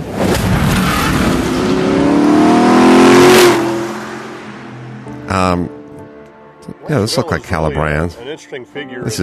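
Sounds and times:
sports car engine with Weber carburetors revving: 0.9 - 5.1
speech: 5.4 - 5.8, 6.9 - 9.2.

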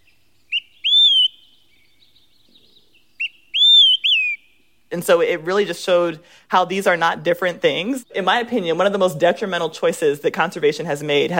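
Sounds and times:
bird singing high whistled phrases: 0.0 - 4.7
speech: 4.9 - 11.3.

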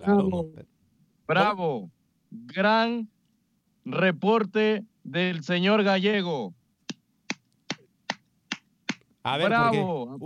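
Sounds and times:
speech: 0.0 - 0.7, 1.3 - 3.2, 3.8 - 6.6, 9.2 - 10.2
one person clapping hands: 6.9 - 9.0.

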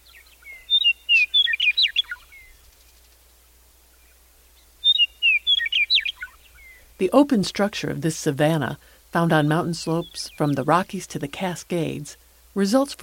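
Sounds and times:
western meadowlark singing in open grassland: 0.0 - 2.6, 4.8 - 6.9
speech: 7.0 - 13.0.

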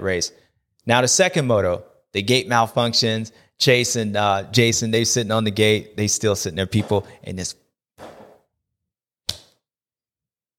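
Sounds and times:
speech: 0.0 - 7.6
hand slapping own skin at a fly: 9.2 - 9.7.

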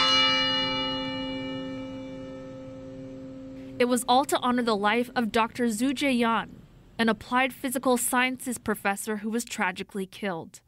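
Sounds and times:
large bell in bell tower ringing: 0.0 - 5.6
speech: 3.8 - 10.6.

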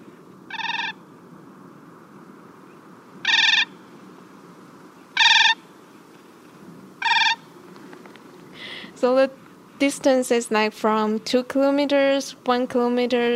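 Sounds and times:
Siberian cranes giving flight calls in the Siberian tundra: 0.0 - 1.5, 2.6 - 9.0
speech: 9.0 - 13.3.

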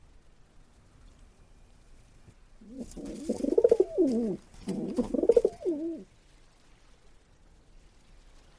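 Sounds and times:
English carrier pigeon cooing: 2.6 - 6.1.

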